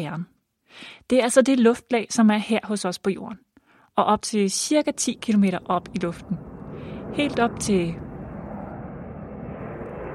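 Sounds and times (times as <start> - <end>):
speech: 0.0 - 6.4, 7.1 - 8.1
airplane engines roaring: 4.7 - 10.1.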